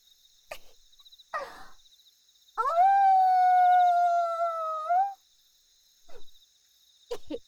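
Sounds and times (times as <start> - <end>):
person howling in imitation of a wolf: 2.6 - 5.2.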